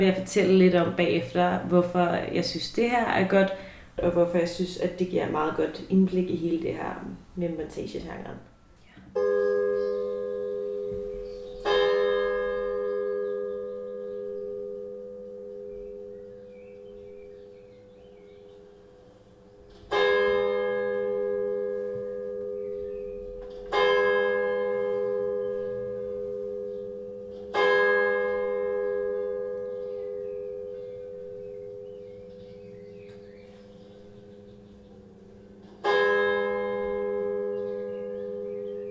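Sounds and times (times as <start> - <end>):
speech: 0.0 - 8.5
church bells ringing: 8.2 - 38.8.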